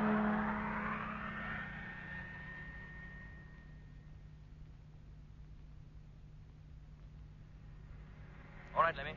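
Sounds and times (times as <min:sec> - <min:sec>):
truck engine starting, revving and pulling away: 0:00.0 - 0:03.3.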